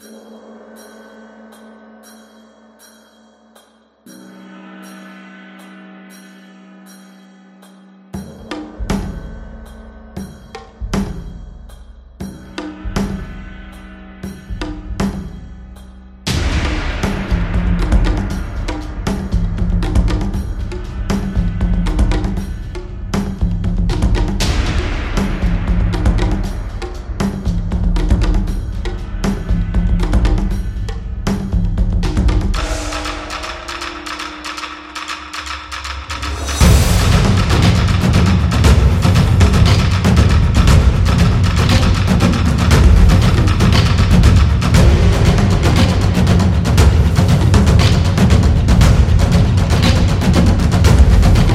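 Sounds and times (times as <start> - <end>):
Japanese taiko percussion: 8.2 - 51.5.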